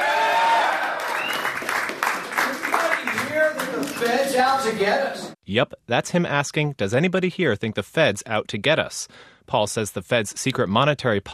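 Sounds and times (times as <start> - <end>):
audience applauding and cheering at a political campaign speech in Des Moines: 0.0 - 4.9
speech: 4.4 - 11.3.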